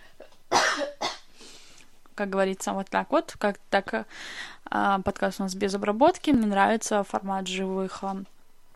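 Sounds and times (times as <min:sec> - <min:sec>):
person coughing: 0:00.0 - 0:01.3
speech: 0:02.2 - 0:08.3
soft breathy tail after coughing: 0:04.1 - 0:04.6.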